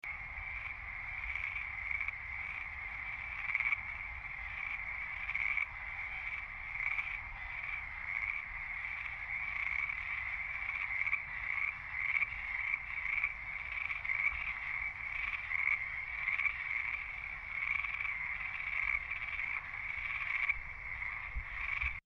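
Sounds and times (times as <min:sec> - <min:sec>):
frogs: 0:00.0 - 0:22.0.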